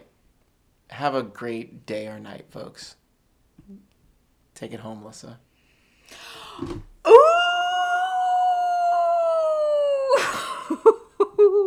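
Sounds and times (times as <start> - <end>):
speech: 1.0 - 3.0, 3.7 - 3.9, 4.6 - 5.5, 6.1 - 6.9
wolf howling and yelping: 7.0 - 10.8.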